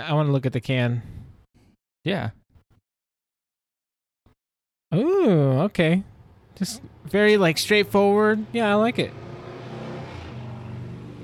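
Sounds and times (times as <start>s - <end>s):
speech: 0.0s - 1.2s, 2.0s - 2.4s, 4.9s - 9.3s
car engine accelerating past: 7.2s - 11.2s.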